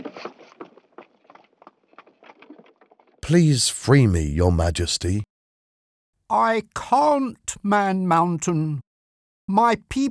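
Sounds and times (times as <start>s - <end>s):
horse hooves clip-clopping at a walking pace: 0.0s - 3.1s
speech: 3.3s - 5.3s, 6.3s - 8.9s, 9.5s - 10.0s.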